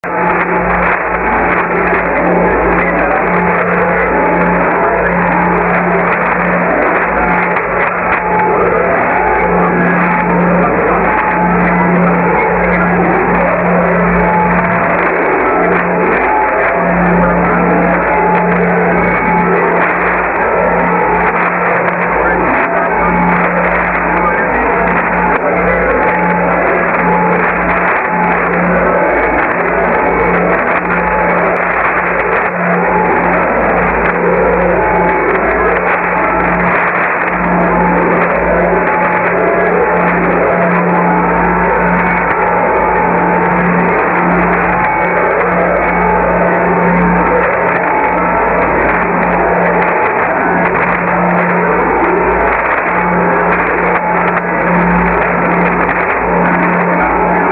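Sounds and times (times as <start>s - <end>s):
North Korean radio noise jammer: 0.0s - 57.5s.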